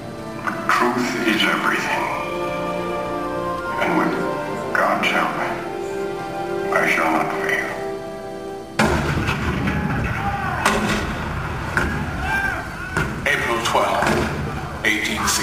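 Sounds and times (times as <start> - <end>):
indistinct voices: 0.0 - 15.4
speech: 0.4 - 2.4
cannon fire booming: 8.8 - 14.9
rumbling battle din: 8.8 - 14.9.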